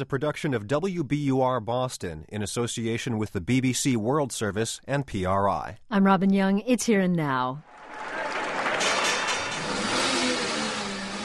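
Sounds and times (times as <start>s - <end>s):
speech: 0.0s - 8.2s
new Chevy Camaro engine roaring and revving at the New York Stock Exchange: 7.8s - 11.2s.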